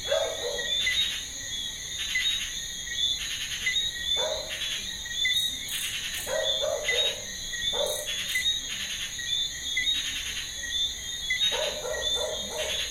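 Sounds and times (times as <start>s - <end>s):
dog barking in a garden: 0.0s - 0.8s, 4.2s - 4.6s, 6.2s - 8.2s, 11.5s - 12.8s
Eleutherodactylus frogs: 0.0s - 12.8s
crickets: 0.0s - 12.8s.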